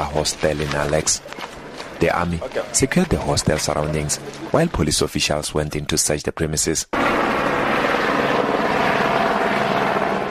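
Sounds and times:
speech: 0.0 - 1.4, 2.0 - 7.1
police helicopter flying overhead: 0.0 - 4.8, 6.9 - 10.2.

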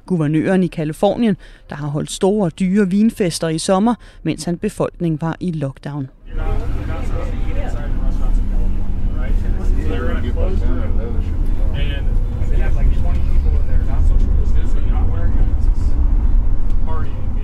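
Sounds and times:
bus passengers chatting: 0.0 - 17.4
speech: 0.1 - 7.4, 9.9 - 13.3
moving bus engine rumble in Dalton Georgia: 6.2 - 17.4
road noise inside a moving bus: 6.2 - 17.4.

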